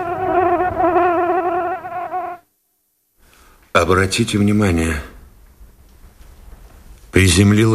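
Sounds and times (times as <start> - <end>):
housefly buzzing around: 0.0 - 2.5
speech: 3.8 - 5.1, 7.2 - 7.7.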